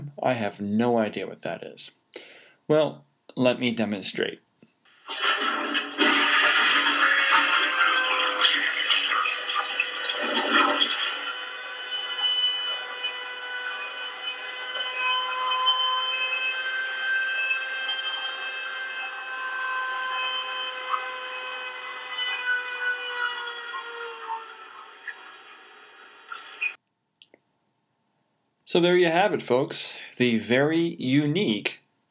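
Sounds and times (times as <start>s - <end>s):
speech: 0.2s - 4.4s, 28.7s - 31.8s
toilet alarm with piercing multi-tone whine: 4.9s - 26.8s
loud rushing toilet flush: 5.0s - 11.4s.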